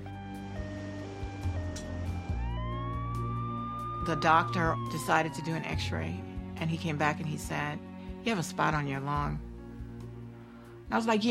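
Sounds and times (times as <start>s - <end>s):
ambulance siren wailing: 0.0s - 7.2s
speech: 4.0s - 9.5s, 10.9s - 11.2s.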